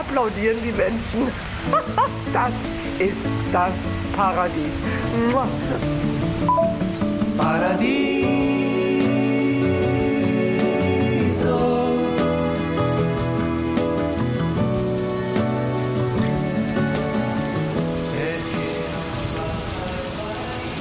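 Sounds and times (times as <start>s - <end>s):
warm summer rain pattering on a surface: 0.0s - 20.8s
speech: 0.2s - 8.5s
laughter: 1.7s - 2.2s, 5.0s - 6.0s
sustained musical tones: 4.8s - 18.1s.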